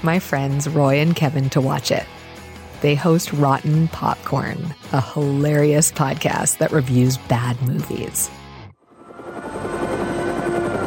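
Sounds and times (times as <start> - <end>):
speech: 0.0 - 2.2, 2.8 - 8.4
helicopter rotor roar with rhythmic chop in a movie scene: 8.8 - 10.8.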